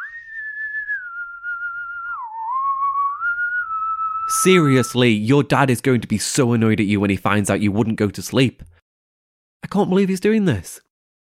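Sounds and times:
person whistling a single steady tone: 0.0 - 4.5
speech: 4.3 - 8.7, 9.7 - 10.8.

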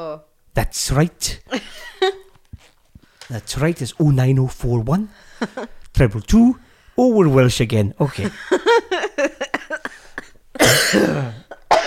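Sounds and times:
speech: 0.0 - 2.2, 3.3 - 8.8, 10.6 - 11.4
laughter: 1.5 - 2.3, 5.2 - 5.8, 8.0 - 10.4
person coughing fit with throat clearing: 9.6 - 11.8.

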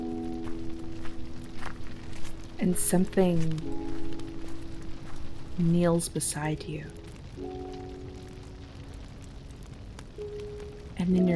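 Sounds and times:
soft footsteps: 0.0 - 6.0
speech: 2.6 - 3.9, 5.6 - 7.0, 11.1 - 11.3.

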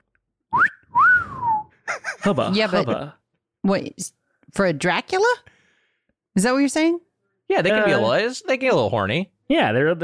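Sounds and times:
wolf whistle: 0.5 - 1.7
speech: 2.2 - 5.6, 6.4 - 10.0.

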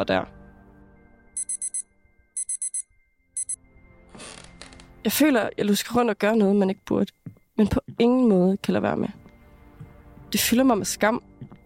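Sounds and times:
speech: 0.0 - 0.4, 5.0 - 9.2, 10.3 - 11.3
alarm clock beeping sharp electronic tones: 1.4 - 3.6.

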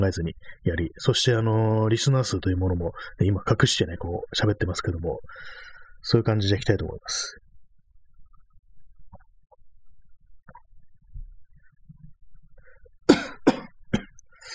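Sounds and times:
speech: 0.0 - 7.4
faint breathy sounds: 2.9 - 3.2, 5.2 - 6.0, 12.5 - 13.0, 14.3 - 14.5
small throat noises: 12.6 - 14.5
loud harsh coughs: 13.1 - 14.2.

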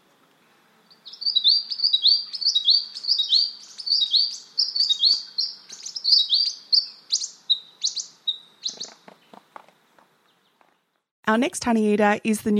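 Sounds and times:
eastern spinebill singing: 0.9 - 9.4
speech: 11.3 - 12.5.

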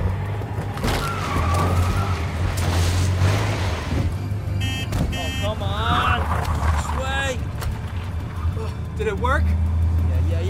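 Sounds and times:
heavy truck engine roaring under strain: 0.0 - 10.4.

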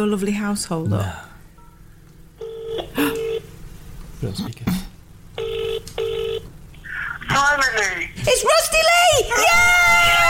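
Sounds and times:
speech: 0.0 - 1.3, 4.2 - 4.9, 7.4 - 10.2
telephone ringing tone over the line: 2.4 - 3.5, 5.4 - 6.4.

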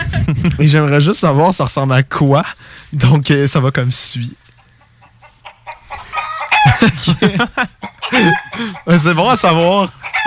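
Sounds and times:
speech: 0.4 - 4.4, 6.8 - 10.2
chicken clucking: 4.5 - 6.9, 7.6 - 10.2
laughter: 6.0 - 9.6.

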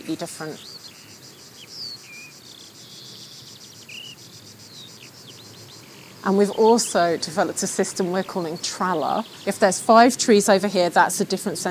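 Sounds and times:
insects chirping in a video game forest ambience: 0.0 - 11.6
speech: 0.1 - 0.8, 6.2 - 11.6.

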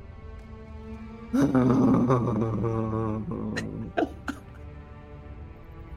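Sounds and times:
speech: 1.3 - 4.1
laughter: 1.4 - 4.4
voice imitating loud snoring: 1.4 - 4.4.

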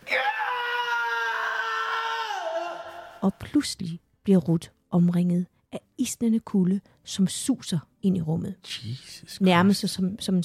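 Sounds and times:
heart-wrenching loud anguished scream: 0.0 - 3.2
speech: 3.2 - 10.4.

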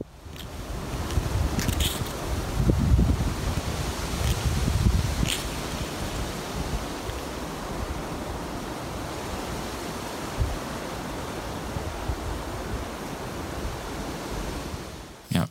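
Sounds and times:
strong wind blowing over the microphone: 0.0 - 15.0.

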